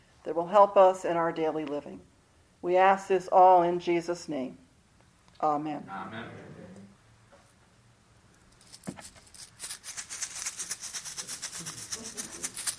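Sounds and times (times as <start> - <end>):
speech: 0.3 - 4.6, 5.4 - 6.5
coins jingling in a bag: 8.6 - 12.7.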